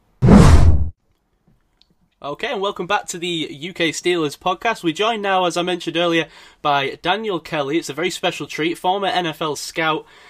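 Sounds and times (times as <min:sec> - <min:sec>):
short whoosh transition sound effect: 0:00.1 - 0:00.9
speech: 0:02.2 - 0:10.2.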